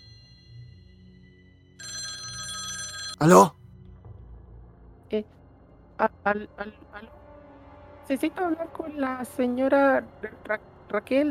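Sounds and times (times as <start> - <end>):
telephone bell ringing: 1.8 - 3.5
speech: 3.2 - 3.6, 5.1 - 5.4, 6.0 - 7.2, 8.1 - 11.2.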